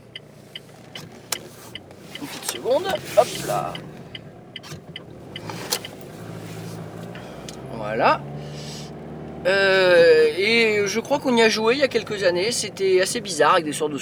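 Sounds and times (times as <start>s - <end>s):
low rumble of passing traffic: 0.0s - 14.0s
car driving past: 0.2s - 10.1s
speech: 2.2s - 4.0s, 7.8s - 8.3s, 9.4s - 14.0s.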